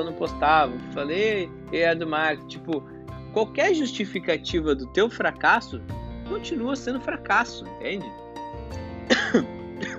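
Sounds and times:
speech: 0:00.0 - 0:09.9
person coughing: 0:09.1 - 0:09.9.

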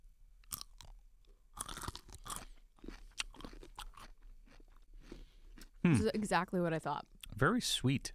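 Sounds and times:
biting and chewing a sweet dill pickle: 0:00.4 - 0:05.9
speech: 0:05.8 - 0:08.1.

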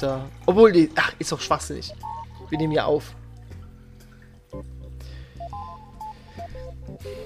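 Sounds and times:
speech: 0:00.0 - 0:03.2, 0:04.5 - 0:04.8
water with lemon slices and ginger poured from a water bottle into a glass: 0:00.0 - 0:04.5.

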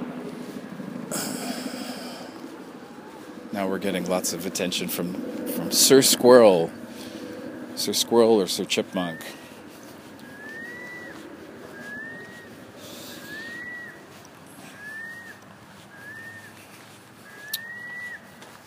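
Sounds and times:
outdoor hiss: 0:00.0 - 0:18.6
seagull calling: 0:01.2 - 0:03.3, 0:06.4 - 0:18.6
speech: 0:03.5 - 0:06.8, 0:07.8 - 0:09.4.

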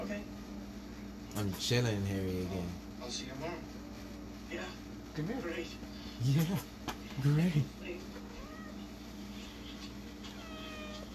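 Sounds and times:
speech: 0:01.4 - 0:03.8, 0:04.5 - 0:08.1
cat meowing for attention: 0:08.2 - 0:08.9, 0:10.2 - 0:11.1.

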